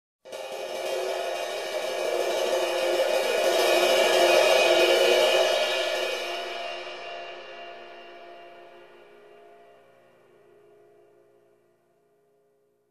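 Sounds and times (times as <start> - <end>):
long ride cymbal swell: 0.3 - 10.0.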